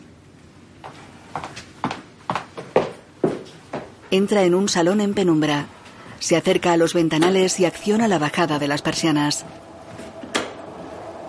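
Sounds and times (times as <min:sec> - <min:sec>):
hard-soled footsteps of a person walking away down an apartment hallway: 0:00.8 - 0:04.2
speech: 0:04.1 - 0:09.7.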